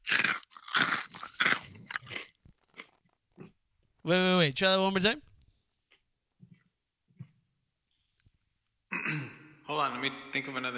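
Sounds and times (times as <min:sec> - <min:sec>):
crisp food being bitten and chewed: 0:00.0 - 0:03.6, 0:05.8 - 0:08.4
speech: 0:04.1 - 0:05.3, 0:10.4 - 0:10.7.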